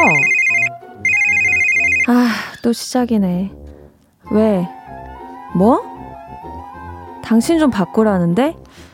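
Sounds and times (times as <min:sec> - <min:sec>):
mobile phone ringing with a bright electronic ringtone: 0:00.0 - 0:02.2
speech: 0:02.1 - 0:03.6, 0:04.3 - 0:04.8, 0:05.5 - 0:05.9, 0:07.2 - 0:08.6.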